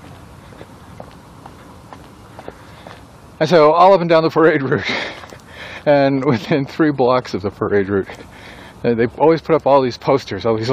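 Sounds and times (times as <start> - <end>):
horse hooves clomping at a walking pace: 0.0 - 7.0
outdoor noise: 0.0 - 10.7
speech: 3.4 - 5.2, 5.8 - 10.7.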